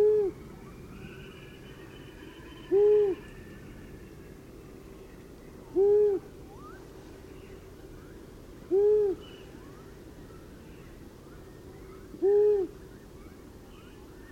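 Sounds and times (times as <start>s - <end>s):
long-eared owl hooting: 0.0s - 3.7s, 5.7s - 6.9s, 8.7s - 9.7s, 12.1s - 12.8s
faint hiss: 0.0s - 14.3s.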